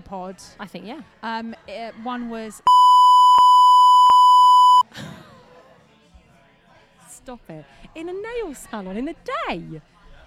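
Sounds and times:
speech: 0.1 - 2.8, 7.2 - 9.9
censor bleep over explicit lyrics: 2.7 - 4.8.

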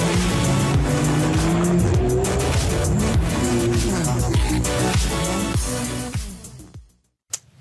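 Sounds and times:
Porsche sports car engine revving under heavy throttle: 0.0 - 5.5.

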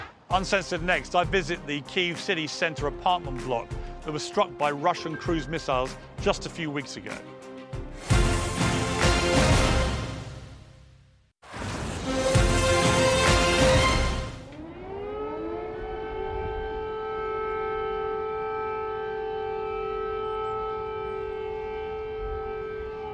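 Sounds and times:
speech: 0.3 - 7.3
air raid siren wailing: 8.0 - 10.3, 11.9 - 23.1.

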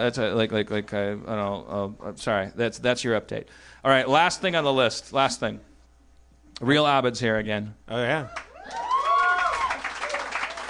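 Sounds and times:
speech: 0.0 - 5.7, 6.6 - 8.8
person whooping: 8.3 - 10.6
small crowd applause: 8.3 - 10.6.

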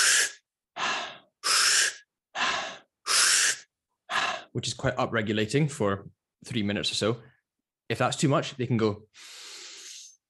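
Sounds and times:
person demonstrating fast stimulating breathing: 0.0 - 4.6
speech: 4.5 - 9.3.

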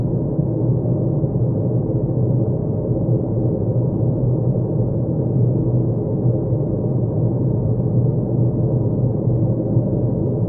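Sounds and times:
dense low rumble of white noise from an icy planet: 0.0 - 10.4.

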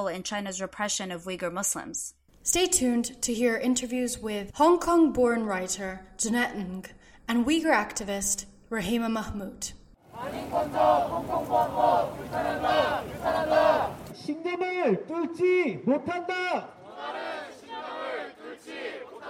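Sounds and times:
speech: 0.0 - 17.2
crowd of protesters in Seoul South Korea chanting to urge a film boycott: 10.1 - 14.1, 16.7 - 19.2.

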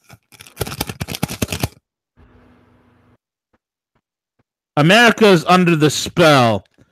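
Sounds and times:
cotton-paper dollar bill crinkling as taken from wallet: 0.0 - 1.8
speech: 4.8 - 6.7.

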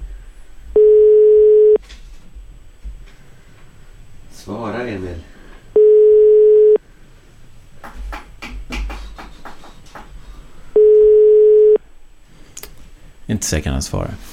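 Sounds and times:
telephone ringback tone, unanswered: 0.8 - 1.8, 5.8 - 6.8, 10.8 - 11.8
speech: 13.3 - 14.3.

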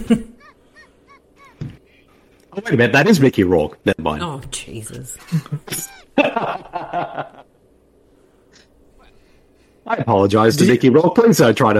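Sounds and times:
speech: 0.0 - 0.4, 2.6 - 7.5, 9.8 - 11.7
laughter: 0.0 - 1.8, 5.2 - 7.5
bird calling with short nasal notes: 0.4 - 2.3.

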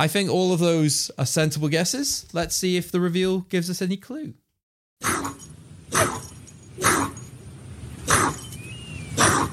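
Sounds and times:
speech: 0.0 - 4.4
debarked labradoodle with clipped vocal cords barking hoarsely: 5.0 - 7.2, 8.0 - 8.5, 9.1 - 9.5.

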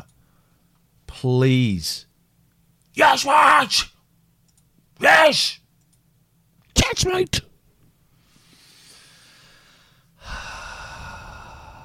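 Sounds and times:
speech: 1.2 - 2.1, 3.0 - 3.9, 5.0 - 5.6, 6.8 - 7.5
deep breathing with inhale and breathy exhale: 8.2 - 11.8.

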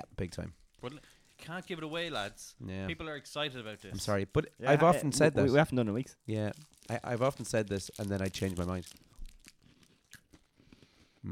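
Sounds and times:
speech: 0.2 - 9.1
person biting and chewing a honeycomb chocolate bar: 6.4 - 11.1.

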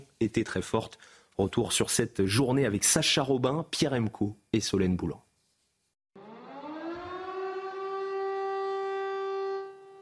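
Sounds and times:
speech: 0.2 - 5.2
civil-defense siren wailing in a public square: 6.2 - 10.0.

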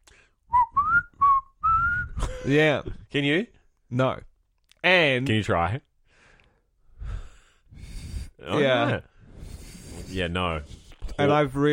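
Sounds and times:
person whistling short clear notes: 0.5 - 2.3
speech: 2.4 - 5.9, 8.4 - 9.1, 10.1 - 11.7.

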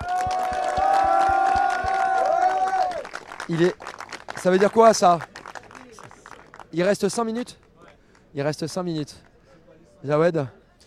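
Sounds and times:
voices cheering: 0.0 - 3.3
crowd clapping in a steady rhythmic beat: 0.0 - 9.4
speech: 3.5 - 5.3, 6.8 - 7.6, 8.4 - 9.3, 10.0 - 10.6.

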